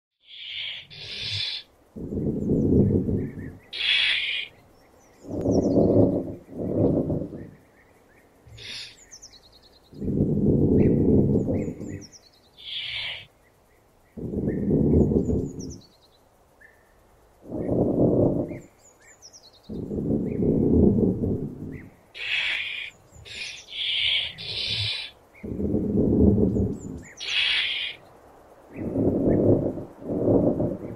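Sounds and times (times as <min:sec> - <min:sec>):
opossum sounds: 0:00.2 - 0:04.6, 0:05.2 - 0:07.6, 0:08.5 - 0:09.0, 0:09.9 - 0:13.3, 0:14.2 - 0:15.8, 0:17.4 - 0:18.7, 0:19.7 - 0:28.0, 0:28.7 - 0:30.9.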